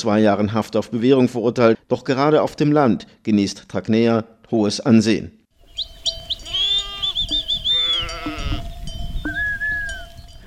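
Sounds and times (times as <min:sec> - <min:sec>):
speech: 0:00.0 - 0:05.4
high tinkling bells: 0:05.9 - 0:10.4
sheep bleating in a rural village: 0:06.4 - 0:08.8.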